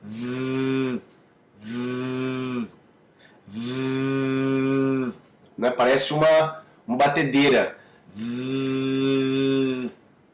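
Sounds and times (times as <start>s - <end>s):
sustained voiced th fricative buzz: 0.0s - 5.3s, 8.0s - 10.3s
speech: 5.6s - 8.6s.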